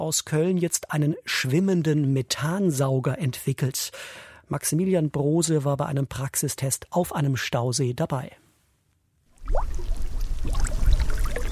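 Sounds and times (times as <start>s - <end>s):
speech: 0.1s - 8.4s, 9.5s - 10.7s
gas bubbles rising in reservoir water as the lake bed is stirred with a stick: 9.3s - 11.5s.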